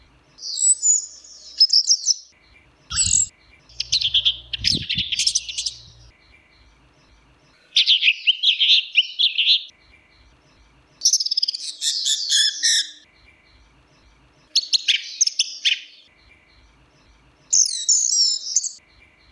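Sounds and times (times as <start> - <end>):
orange-headed thrush warbling song: 0.4 - 13.8, 14.5 - 19.3.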